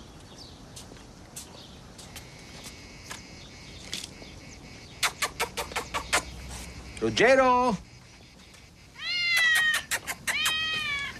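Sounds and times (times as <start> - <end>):
speech: 7.0 - 7.9
cat meowing: 9.0 - 11.1.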